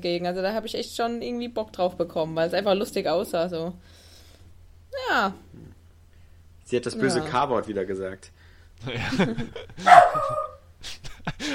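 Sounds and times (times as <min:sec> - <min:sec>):
speech: 0:00.0 - 0:04.0, 0:04.9 - 0:05.7, 0:06.7 - 0:11.5
people laughing: 0:08.8 - 0:11.5
dog barking: 0:09.8 - 0:10.6
dog yipping: 0:09.9 - 0:10.6.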